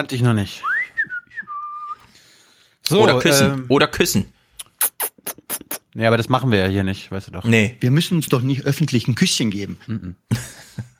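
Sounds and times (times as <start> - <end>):
speech: 0.0 - 0.7, 2.9 - 4.4, 6.0 - 10.9
person whistling: 0.6 - 2.1
laughter: 9.9 - 10.9.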